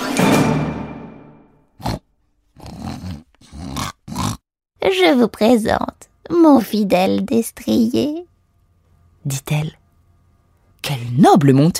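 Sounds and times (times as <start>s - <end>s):
big shaggy slobbering pig squealing snarl: 1.8s - 2.0s, 2.6s - 4.4s
speech: 4.9s - 8.2s, 9.2s - 9.8s, 10.8s - 11.7s.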